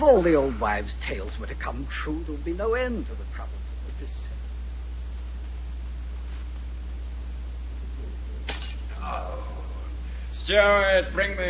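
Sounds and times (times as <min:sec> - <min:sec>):
speech: 0:00.0 - 0:04.1, 0:10.5 - 0:11.4
steady low hum: 0:00.0 - 0:11.4
wine glass dropping and shattering: 0:08.5 - 0:08.9.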